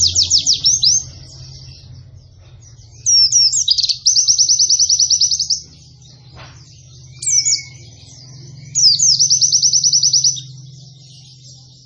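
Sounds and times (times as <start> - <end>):
low steady hum: 0.0 - 11.8
quiet white-eye chattering: 0.0 - 11.8
white-eye delivering rapid high-pitched trills: 0.0 - 11.8.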